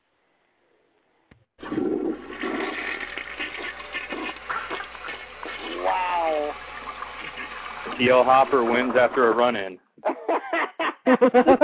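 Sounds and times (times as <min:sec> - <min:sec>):
toilet flushing: 0:01.6 - 0:09.7
speech: 0:08.0 - 0:09.8, 0:11.1 - 0:11.6
laughter: 0:10.0 - 0:11.6.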